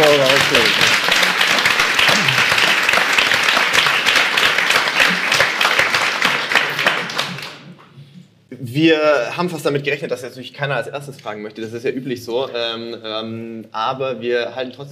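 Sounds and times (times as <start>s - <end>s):
audience applause at a live event in a sports shop: 0.0s - 7.8s
speech: 0.2s - 0.9s, 8.8s - 14.9s.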